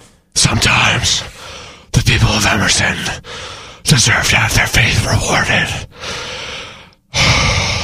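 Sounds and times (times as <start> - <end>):
speech: 0.5 - 1.4, 2.1 - 6.3
heavy breathing through a mask: 1.3 - 1.9, 3.2 - 3.8, 5.9 - 7.8.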